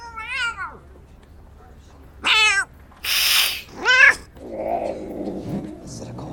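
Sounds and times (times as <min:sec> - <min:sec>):
cat meowing: 0:00.0 - 0:00.8, 0:02.2 - 0:04.3
harsh noisy burst: 0:03.0 - 0:03.8.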